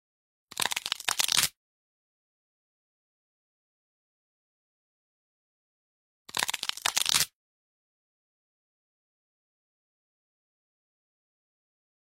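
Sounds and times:
bone cracking: 0.5s - 1.5s, 6.3s - 7.3s.

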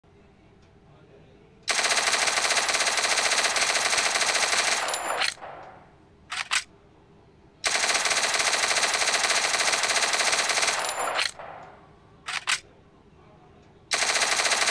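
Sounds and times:
Thompson gun firing: 1.7s - 6.6s, 7.6s - 12.6s, 13.9s - 14.6s.

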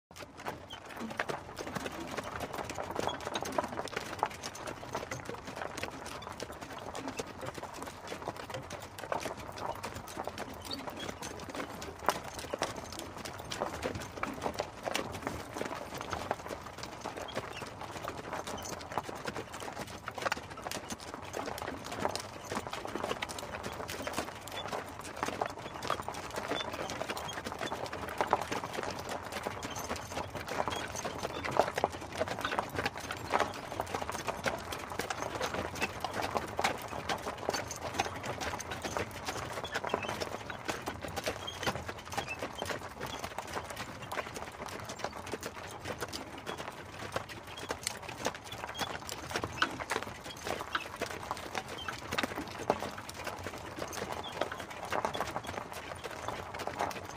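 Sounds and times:
horse and carriage: 0.1s - 57.1s.

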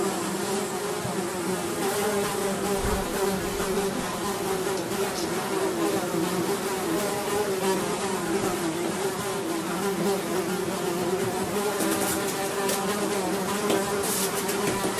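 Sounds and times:
flies buzzing: 0.0s - 14.9s
faint dull thump: 2.8s - 3.3s.

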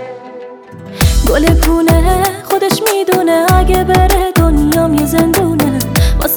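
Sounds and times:
Iranian woman singing: 0.9s - 6.3s.

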